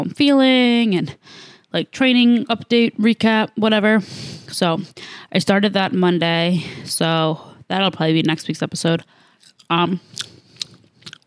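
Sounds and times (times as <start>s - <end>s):
speech: 0.0s - 10.2s
person chewing french fries: 9.4s - 11.2s.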